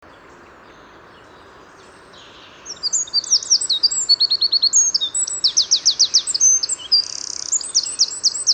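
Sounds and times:
Eurasian wren song, Troglodytes troglodytes, cascade of sharp notes and trills: 0.1s - 8.5s.

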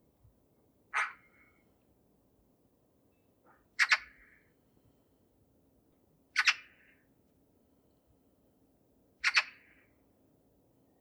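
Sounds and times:
Eurasian magpie Pica pica scratchy calls: 1.0s - 1.3s, 3.8s - 4.2s.

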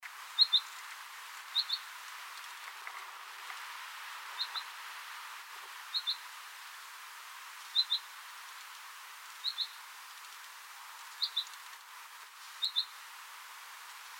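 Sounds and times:
steady hiss of background noise: 0.0s - 14.1s
common chaffinch Fringilla coelebs calls: 0.4s - 0.7s, 1.5s - 1.9s, 4.4s - 4.8s, 5.9s - 6.3s, 7.7s - 8.1s, 9.4s - 9.8s, 11.2s - 11.6s, 12.6s - 13.0s.

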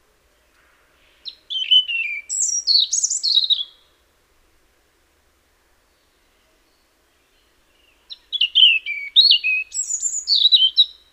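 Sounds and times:
European robin singing: 0.4s - 4.0s, 5.8s - 11.1s.

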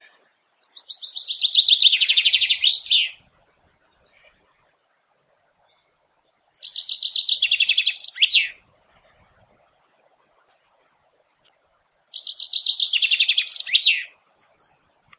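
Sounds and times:
common chaffinch Fringilla coelebs singing rattling trills: 0.6s - 3.2s, 5.7s - 8.6s, 11.8s - 15.0s.

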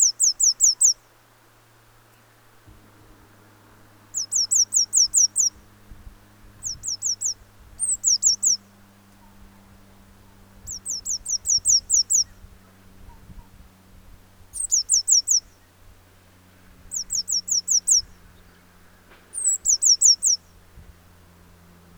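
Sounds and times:
Cyanistes caeruleus Eurasian blue tit giving high downslurred notes: 0.0s - 1.1s, 3.8s - 13.6s, 14.5s - 15.8s, 16.8s - 20.7s
faint rumbling noise: 0.0s - 21.9s
low steady hum: 0.0s - 21.9s.

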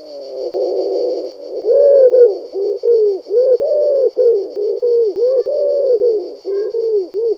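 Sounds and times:
bird cooing: 0.0s - 7.3s.

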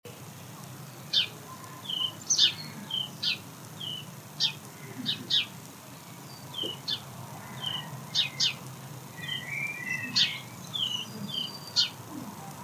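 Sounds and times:
House sparrow Passer domesticus giving short bright chirps: 0.8s - 5.5s, 6.2s - 8.6s, 9.2s - 12.0s.

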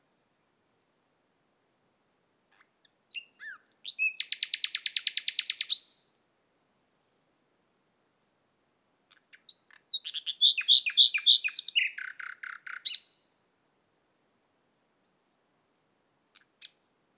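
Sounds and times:
common nightingale Luscinia megarhynchos singing: 2.5s - 6.1s, 9.1s - 13.4s, 16.3s - 17.1s.

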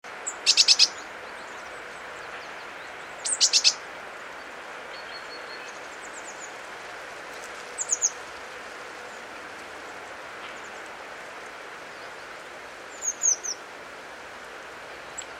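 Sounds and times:
background hiss: 0.1s - 15.3s
Eurasian blue tit Cyanistes caeruleus calls: 0.2s - 1.0s, 3.2s - 3.8s, 7.8s - 8.1s, 12.9s - 13.6s.

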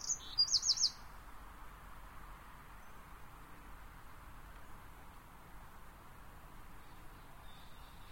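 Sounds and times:
Eurasian wren Troglodytes troglodytes song: 0.0s - 1.1s, 6.8s - 8.0s
quiet hiss: 0.0s - 8.0s.

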